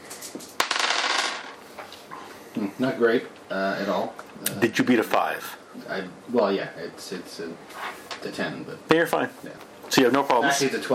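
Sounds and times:
three dice clattering across a hard table during a tabletop game: 0:00.4 - 0:01.6
speech: 0:02.6 - 0:10.9.

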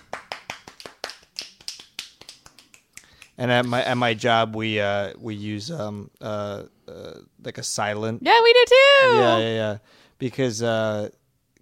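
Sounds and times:
finger snaps: 0:01.4 - 0:03.4
speech: 0:03.4 - 0:11.2.

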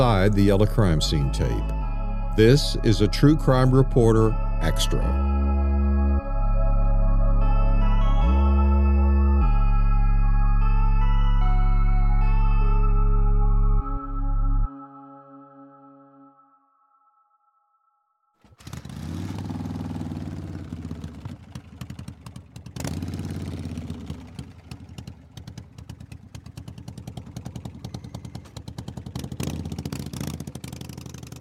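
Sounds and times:
speech: 0:00.0 - 0:01.8, 0:02.4 - 0:05.3
sustained tone: 0:00.0 - 0:18.3
motorcycle engine idling: 0:18.4 - 0:31.3.

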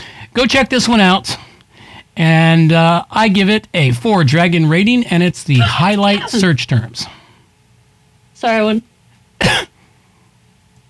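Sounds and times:
speech: 0:00.4 - 0:01.4, 0:02.2 - 0:07.2, 0:08.4 - 0:09.7
person coughing after inhaling tea: 0:05.6 - 0:06.5, 0:09.4 - 0:09.8.

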